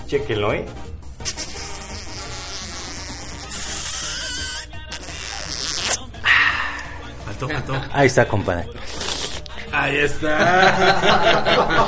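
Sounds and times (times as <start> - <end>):
speech: 0.1 - 0.9, 7.4 - 8.9, 9.7 - 11.8
vocal imitation of a kiss with buzzy smooching noise: 1.2 - 7.0, 8.8 - 9.6
laughter: 6.3 - 8.0, 10.0 - 11.8.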